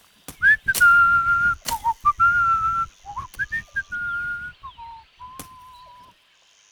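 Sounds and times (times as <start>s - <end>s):
rustling: 0.0s - 6.1s
sharp chopping or cutting thwacks: 0.3s - 2.3s
person whistling a tune: 0.4s - 6.1s.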